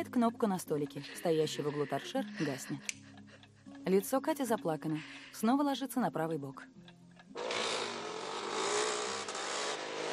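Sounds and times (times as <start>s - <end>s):
speech: 0.0s - 3.1s, 3.8s - 6.8s
two motorcycle engines roaring past: 7.4s - 10.1s.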